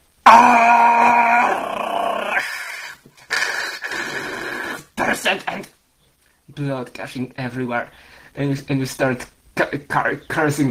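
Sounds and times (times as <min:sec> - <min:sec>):
person screaming in pain: 0:00.2 - 0:04.9
speech: 0:00.3 - 0:00.8, 0:06.6 - 0:10.6.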